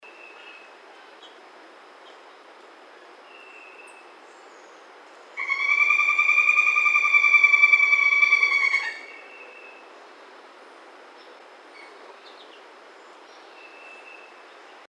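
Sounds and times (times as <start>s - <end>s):
Northern Flicker calling: 5.4s - 9.3s.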